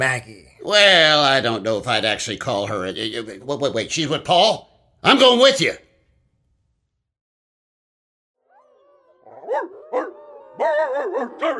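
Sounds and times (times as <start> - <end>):
speech: 0.0 - 5.8, 10.6 - 11.5
wolves barking in sharp yelps: 8.5 - 11.5.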